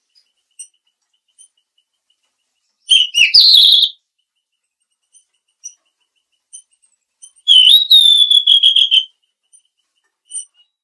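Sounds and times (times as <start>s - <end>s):
mangrove blue flycatcher whistling: 2.9s - 4.0s, 7.5s - 9.1s.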